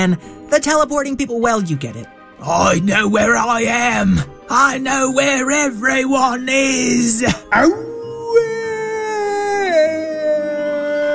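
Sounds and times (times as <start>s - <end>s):
speech: 0.0s - 8.5s
werewolf howl: 7.2s - 11.1s.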